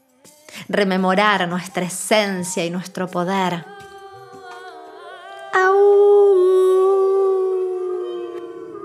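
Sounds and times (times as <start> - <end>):
speech: 0.6 - 3.8
women howling like wolves: 4.7 - 8.8.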